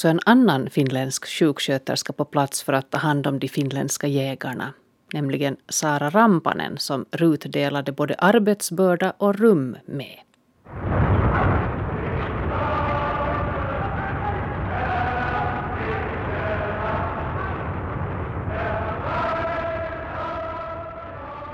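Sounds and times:
speech: 0:00.0 - 0:11.0
heavy continuous artillery cannonade at night: 0:10.7 - 0:21.2.

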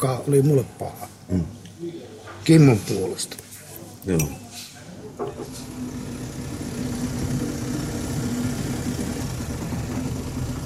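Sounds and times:
speech: 0:00.0 - 0:01.6, 0:02.4 - 0:03.4, 0:04.0 - 0:04.4
motorboat engine idling: 0:05.5 - 0:10.6.

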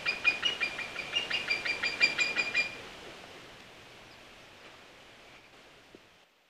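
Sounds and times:
white-tailed eagle yelping call: 0:00.0 - 0:02.8.

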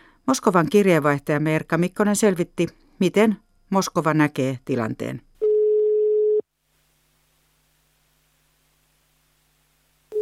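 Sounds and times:
speech: 0:00.3 - 0:05.3
telephone ringback tone while a call is placed: 0:05.4 - 0:06.4.

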